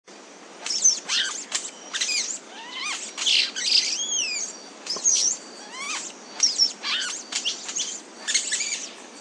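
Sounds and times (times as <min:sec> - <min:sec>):
Chestnut-bellied euphonia singing: 0:00.6 - 0:09.1.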